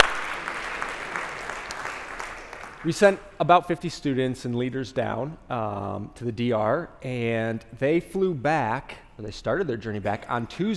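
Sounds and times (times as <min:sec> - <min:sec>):
audience at a sermon clapping: 0:00.0 - 0:03.3
speech: 0:02.8 - 0:10.7.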